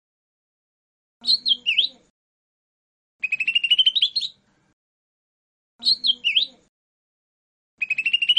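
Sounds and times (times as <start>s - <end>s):
speech: 1.2s - 1.5s
lesser green leafbird song: 1.2s - 2.1s, 3.2s - 4.4s, 5.8s - 6.7s, 7.8s - 8.3s.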